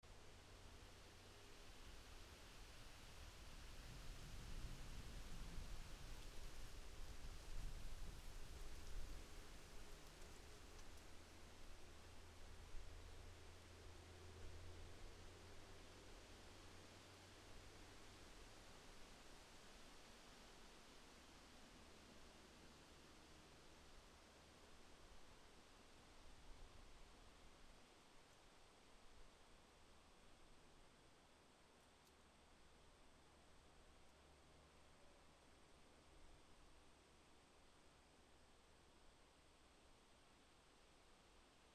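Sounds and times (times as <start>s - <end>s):
wind in a forest: 0.0s - 41.7s.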